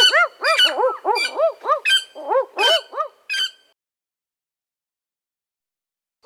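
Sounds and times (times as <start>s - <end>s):
barking owl calling: 0.0s - 3.6s.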